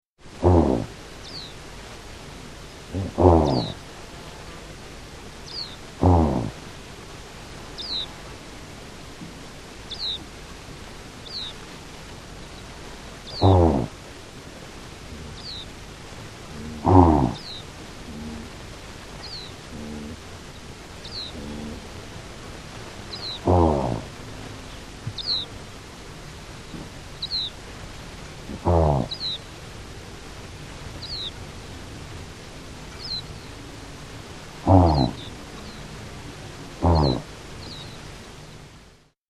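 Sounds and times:
antelope calling: 0.4 - 1.6, 2.9 - 3.9, 5.4 - 6.6, 7.8 - 8.2, 9.9 - 10.3, 11.2 - 11.6, 12.4 - 14.0, 15.1 - 15.8, 16.4 - 22.2, 23.0 - 25.6, 26.6 - 27.6, 28.4 - 29.5, 31.0 - 31.4, 32.9 - 33.7, 34.6 - 38.0.

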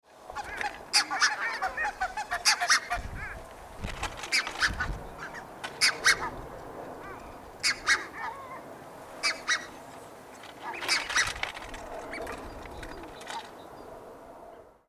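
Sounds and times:
red-breasted goose voice: 0.2 - 3.4, 4.2 - 9.8, 10.5 - 13.5.

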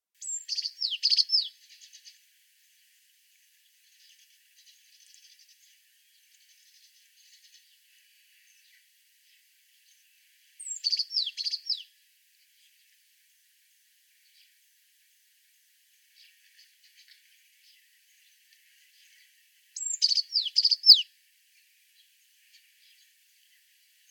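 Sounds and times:
white azure tit calling: 0.2 - 1.6, 10.6 - 11.9, 19.8 - 21.1.

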